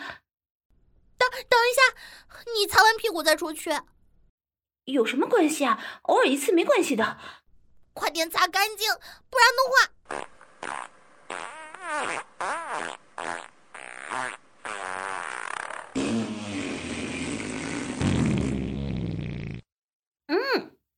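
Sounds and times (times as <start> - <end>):
speech: 2.5 - 4.0, 4.8 - 7.4, 8.0 - 13.3
farts in a toilet: 10.1 - 19.7.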